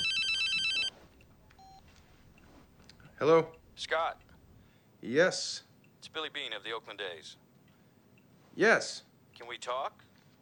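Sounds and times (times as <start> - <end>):
telephone ringing with an electronic trill: 0.0 - 1.0
speech: 3.2 - 4.3, 5.0 - 7.4, 8.6 - 10.1.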